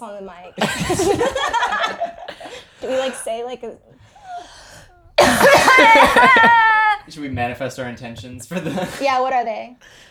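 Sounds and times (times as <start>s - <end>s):
speech: 0.0s - 2.1s, 2.8s - 4.0s, 5.2s - 10.0s
laughter: 0.4s - 3.6s, 5.2s - 10.0s
person coughing to clear the throat: 5.2s - 6.6s.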